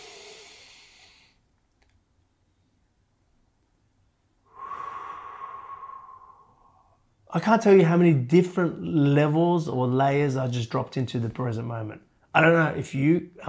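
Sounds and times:
slow deep breath during a guided breathing exercise: 0:00.0 - 0:01.5, 0:04.4 - 0:07.2
speech: 0:07.3 - 0:13.4.

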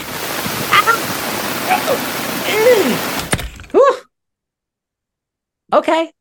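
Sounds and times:
loud steady storm rain heard through an open door: 0:00.0 - 0:03.4
speech: 0:05.8 - 0:06.2.

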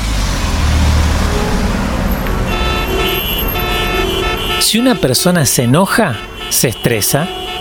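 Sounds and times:
busy road traffic engine rumble: 0:00.0 - 0:07.5
car horns honking: 0:00.8 - 0:07.5
speech: 0:04.7 - 0:07.5.

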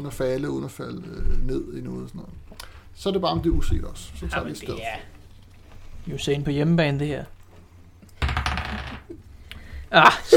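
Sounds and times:
speech: 0:00.0 - 0:05.2, 0:06.0 - 0:07.4, 0:09.9 - 0:10.3
faint noise: 0:00.0 - 0:10.3
die rolling across a hard tabletop in a board game: 0:08.2 - 0:09.2.

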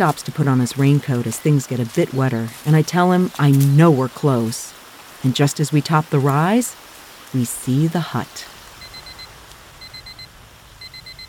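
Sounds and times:
speech: 0:00.0 - 0:08.5
alarm clock beeping: 0:08.8 - 0:11.2.

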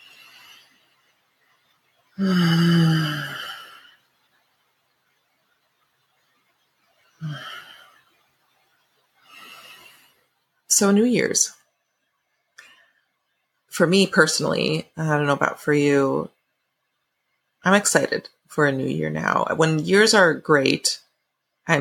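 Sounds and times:
deep breaths: 0:00.0 - 0:04.3, 0:07.2 - 0:10.5
speech: 0:02.2 - 0:02.7, 0:10.8 - 0:11.6, 0:13.8 - 0:16.4, 0:17.6 - 0:21.0.

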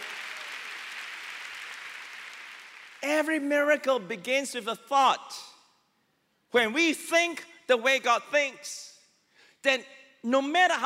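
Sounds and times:
sustained applause from a sizable audience: 0:00.0 - 0:03.0
speech: 0:03.0 - 0:05.5, 0:06.5 - 0:08.9, 0:09.6 - 0:10.8.

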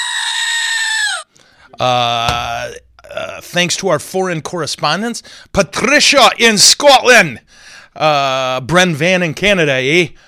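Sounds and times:
goat screaming: 0:00.0 - 0:01.3
speech: 0:01.8 - 0:02.8, 0:03.4 - 0:10.2.

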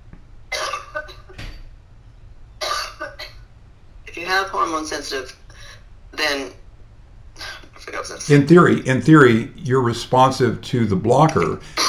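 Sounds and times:
person coughing: 0:00.5 - 0:01.4, 0:02.6 - 0:03.4, 0:11.6 - 0:11.8
speech: 0:04.3 - 0:05.4, 0:06.2 - 0:06.6, 0:08.0 - 0:11.8.

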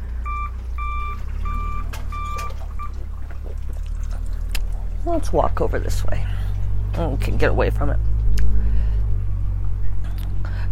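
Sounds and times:
truck engine rumble: 0:00.0 - 0:10.7
truck reversing alarm beeps outside a house: 0:00.2 - 0:03.0
speech: 0:05.1 - 0:06.4, 0:07.0 - 0:08.1.

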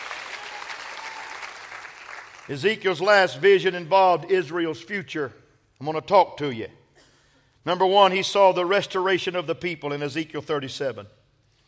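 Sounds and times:
audience clapping: 0:00.0 - 0:02.5
speech: 0:02.5 - 0:06.8, 0:07.6 - 0:11.2.

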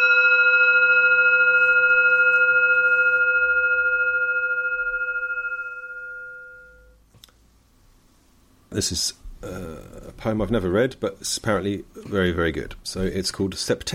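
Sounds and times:
gong stroke ringing: 0:00.0 - 0:07.0
speech: 0:08.8 - 0:09.6, 0:10.2 - 0:13.9.

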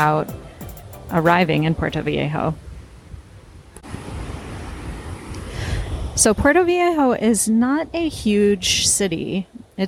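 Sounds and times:
speech: 0:00.0 - 0:00.4, 0:01.1 - 0:02.7, 0:06.2 - 0:09.8
ocean surf at Puerto Viejo: 0:00.0 - 0:07.3
gusting wind buffeting the microphone: 0:01.6 - 0:09.8.

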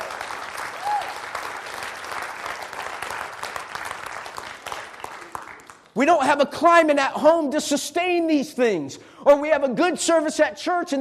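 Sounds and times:
audience applauding: 0:00.0 - 0:06.0
speech: 0:06.0 - 0:10.9.

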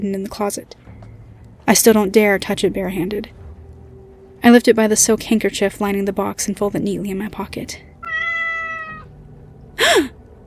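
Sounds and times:
speech: 0:00.0 - 0:00.8, 0:01.7 - 0:03.4, 0:04.4 - 0:07.9, 0:09.8 - 0:10.2
cat meowing atop a bookshelf: 0:08.0 - 0:09.1.

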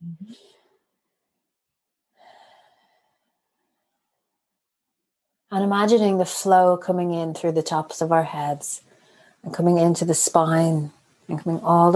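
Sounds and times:
slow deep breathing during a guided breathing exercise: 0:02.1 - 0:04.2
speech: 0:05.5 - 0:11.9.

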